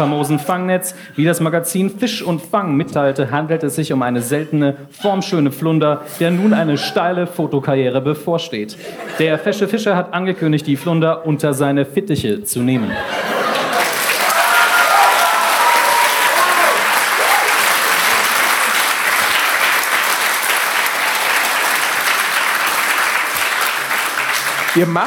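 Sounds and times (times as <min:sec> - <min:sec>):
laughter: 0:00.0 - 0:00.6, 0:06.1 - 0:07.2, 0:08.7 - 0:09.7, 0:12.8 - 0:19.3
speech: 0:00.0 - 0:13.3, 0:24.8 - 0:25.0
audience applause: 0:13.2 - 0:25.0.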